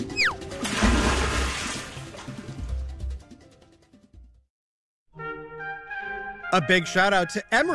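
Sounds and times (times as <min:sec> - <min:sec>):
long descending slide-whistle swoop: 0:00.1 - 0:00.4
loud broad splash at the end of a water slide on a cruise ship: 0:00.3 - 0:02.8
speech: 0:06.5 - 0:07.7.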